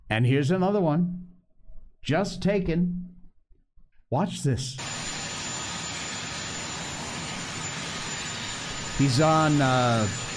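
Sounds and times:
speech: 0.1 - 1.2, 2.0 - 3.1, 4.1 - 5.0, 9.0 - 10.2
helicopter turbine engine running: 4.8 - 10.3.

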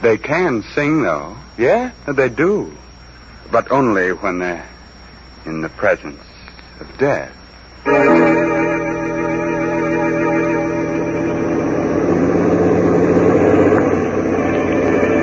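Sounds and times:
speech: 0.0 - 2.8, 3.5 - 4.7, 5.4 - 8.5
truck engine droning while driving at night: 7.8 - 15.2.

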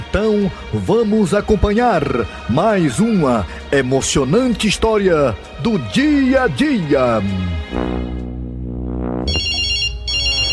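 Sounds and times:
speech: 0.1 - 8.0
telephone ringing with an electronic ringtone: 9.3 - 10.5.

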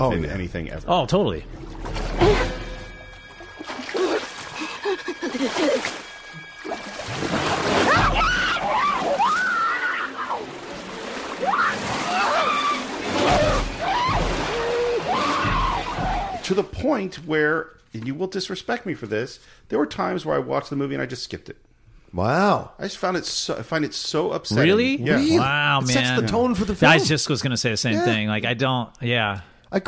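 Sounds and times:
speech: 0.0 - 2.6, 4.9 - 6.0, 16.5 - 29.8
swimmer splashing in ocean water: 1.5 - 17.1.

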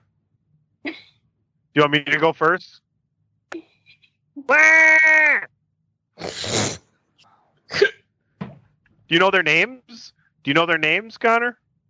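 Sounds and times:
speech: 1.8 - 2.8, 4.4 - 5.5, 9.1 - 11.6
person imitating a goat bleating: 4.4 - 5.5.

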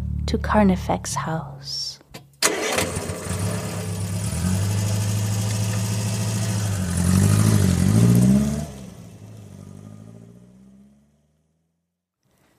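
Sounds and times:
speech: 0.3 - 2.0, 2.8 - 3.0
car engine cranking and catching: 2.4 - 11.7.

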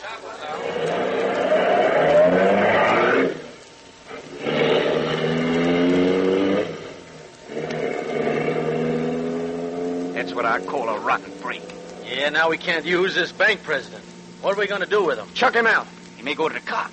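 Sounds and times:
car engine roaring while speeding off up a side road: 0.2 - 14.4
speech: 10.4 - 16.9.

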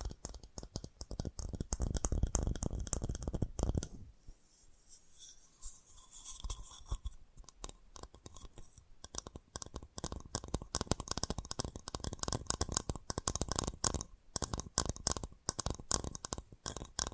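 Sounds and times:
fast tapping: 0.0 - 3.9, 7.4 - 17.1.

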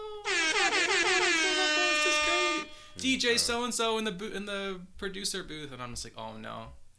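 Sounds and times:
air horn blast: 0.2 - 3.0
speech: 3.0 - 6.8.

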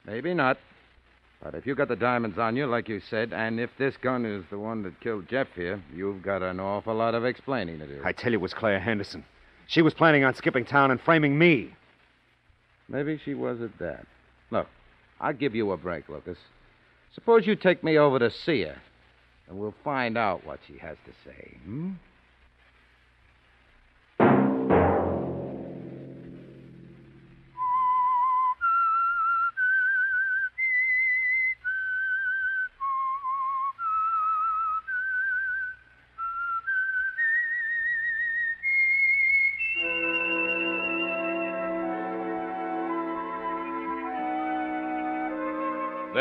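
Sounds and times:
speech: 0.1 - 0.7, 1.4 - 11.8, 12.9 - 18.9, 19.5 - 22.1
orchestral chord: 24.2 - 27.6, 39.8 - 46.1
sharp struck chord: 24.2 - 27.6
lone whistled melody of sustained wavering notes: 27.6 - 46.1.

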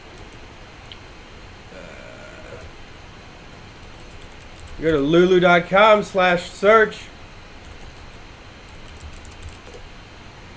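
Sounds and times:
fingers typing on a computer keyboard: 3.5 - 5.0, 7.6 - 9.8
speech: 4.8 - 7.1.

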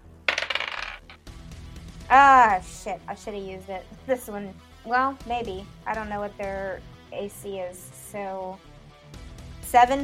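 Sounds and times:
dice rolling on a hard tabletop for a role-playing game attack: 0.3 - 1.2
speech: 2.1 - 8.7, 9.7 - 10.0.

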